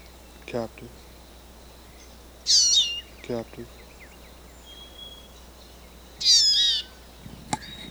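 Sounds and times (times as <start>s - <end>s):
quiet hiss: 0.0s - 7.8s
speech: 0.5s - 1.1s, 3.2s - 3.8s
wild female bird giving a high whistled call: 1.9s - 3.2s, 3.8s - 5.4s, 6.2s - 7.8s.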